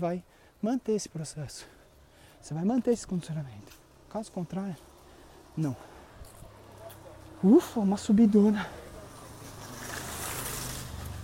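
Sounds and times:
speech: 0:00.0 - 0:01.8, 0:02.4 - 0:04.9, 0:05.6 - 0:05.9, 0:07.4 - 0:08.8
motorcycle passing: 0:03.4 - 0:11.2.

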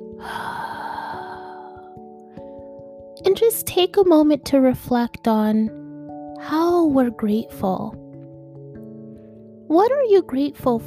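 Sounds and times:
deep breath during a guided gratitude meditation: 0:00.2 - 0:02.8
speech: 0:03.2 - 0:05.8, 0:06.4 - 0:08.0, 0:09.7 - 0:10.8.

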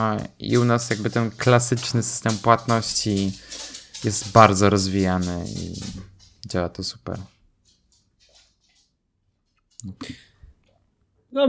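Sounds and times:
speech: 0:00.0 - 0:07.4, 0:09.8 - 0:10.2
dog shuffling up to a person: 0:00.0 - 0:09.9
thumping and scuffling of a dog sitting on a cushion: 0:00.4 - 0:08.9.

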